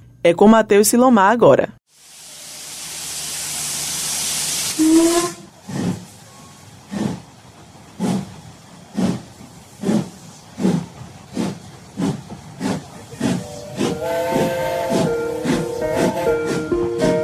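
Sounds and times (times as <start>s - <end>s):
speech: 0.2s - 1.8s
steam train letting out a hiss of steam: 1.9s - 17.2s
steam train whistle: 4.7s - 5.6s, 13.2s - 17.2s.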